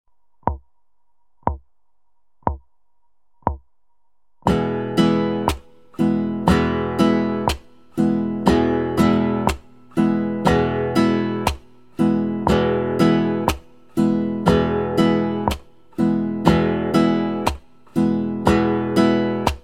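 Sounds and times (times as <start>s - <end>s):
acoustic pop guitar strumming: 4.4s - 19.6s.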